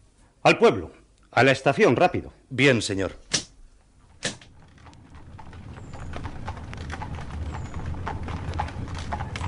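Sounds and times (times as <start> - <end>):
speech: 0.4 - 3.3
sharp crack: 3.3 - 3.6, 4.2 - 5.0
hooves of a horse pulling a carriage clip-clopping: 4.0 - 9.4.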